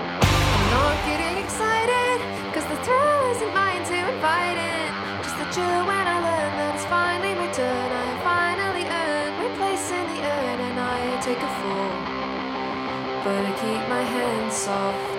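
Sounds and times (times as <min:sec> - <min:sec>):
upbeat indie rock song with driving drums, bright guitars and sung vocals: 0:00.2 - 0:15.1
speech: 0:13.3 - 0:15.1.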